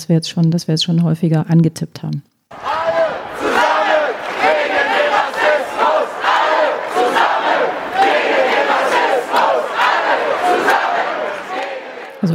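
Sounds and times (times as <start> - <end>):
speech: 0.0 - 2.7
demonstration crowd chanting anti-racism slogans: 2.5 - 12.3.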